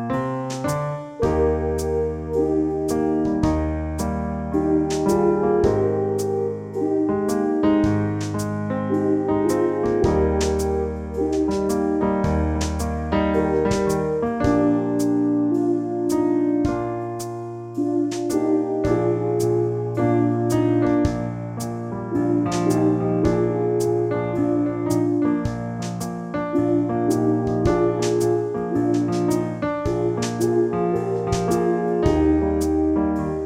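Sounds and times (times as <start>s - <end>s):
brass notes two semitones in E flat: 0.1s - 33.4s.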